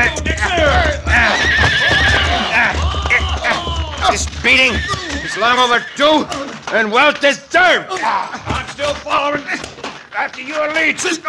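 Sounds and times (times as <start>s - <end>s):
laughter: 0.0s - 6.7s, 7.8s - 10.0s
hooves clip-clopping: 0.0s - 11.2s
voices calling out: 0.0s - 11.2s
horse neighing: 1.0s - 6.6s
speech: 5.4s - 11.2s.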